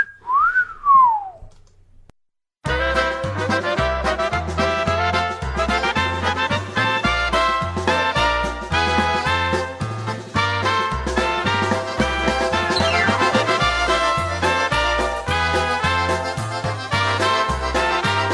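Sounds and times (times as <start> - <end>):
swooping whistle: 0.0 - 1.5, 12.7 - 13.5
polka band with bass and brass playing: 2.6 - 18.3.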